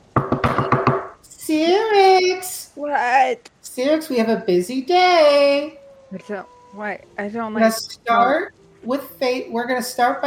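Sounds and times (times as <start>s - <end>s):
knocking on a door: 0.1s - 1.2s
speech: 1.5s - 10.2s.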